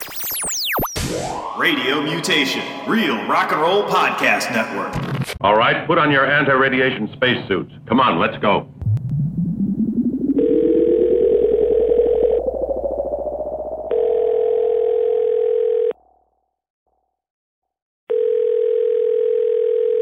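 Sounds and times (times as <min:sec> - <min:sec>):
rising electronic sweep: 0:00.0 - 0:03.4, 0:08.8 - 0:15.0
speech: 0:01.2 - 0:08.7
buzzy phone ringback tones: 0:10.4 - 0:12.4, 0:13.9 - 0:16.0, 0:18.1 - 0:20.0.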